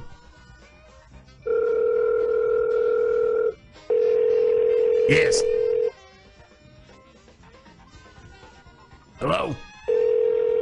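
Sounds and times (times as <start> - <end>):
phone ringback tone on an outgoing call over a speakerphone: 1.4 - 6.0, 9.8 - 10.6
speech: 5.1 - 5.5.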